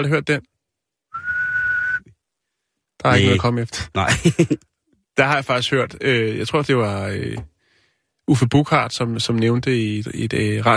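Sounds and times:
speech: 0.0 - 0.5, 3.0 - 7.5, 8.3 - 10.7
person whistling one sustained note: 1.1 - 2.1
laughter: 4.0 - 4.6.

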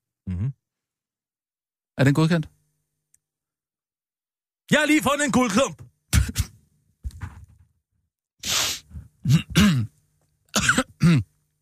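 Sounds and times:
person clearing throat: 0.3 - 0.6, 6.1 - 6.6, 9.2 - 11.4
speech: 0.3 - 0.6, 2.0 - 2.6, 4.7 - 5.8, 11.1 - 11.3
person coughing: 6.2 - 6.6, 9.2 - 11.4.

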